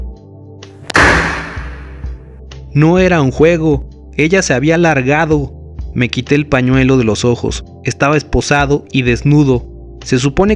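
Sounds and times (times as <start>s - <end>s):
door slamming shut with a sharp heavy bang: 0.9s - 2.1s
speech: 2.8s - 10.5s.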